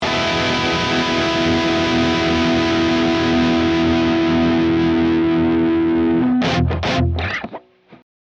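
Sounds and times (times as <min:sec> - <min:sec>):
guitar power chords: 0:00.0 - 0:08.0.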